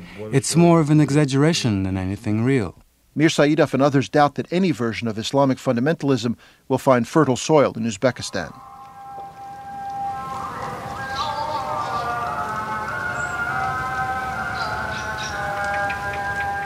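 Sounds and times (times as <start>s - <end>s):
hiss: 0.0s - 16.6s
speech: 0.2s - 8.7s
steady rain patter on a rainy afternoon: 3.2s - 16.6s
faint dripping: 7.5s - 16.6s
amplified voice chanting mosque call to prayer: 8.0s - 16.6s.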